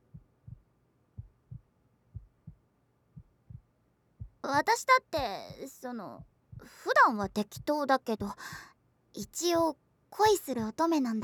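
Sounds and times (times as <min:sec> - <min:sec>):
heartbeat thumping: 0:00.0 - 0:02.6, 0:03.2 - 0:11.2
speech: 0:04.5 - 0:11.2.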